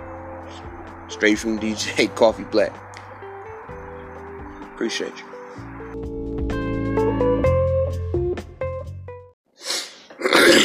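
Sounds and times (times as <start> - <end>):
music: 0.0 - 9.4
speech: 0.6 - 2.9, 4.8 - 6.1
person loudly clearing throat in rough raspy bursts: 10.2 - 10.6.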